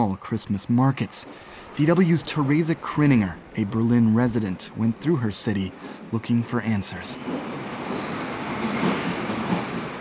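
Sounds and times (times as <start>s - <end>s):
speech: 0.0s - 7.6s
subway train rumbling on tracks: 0.0s - 10.0s.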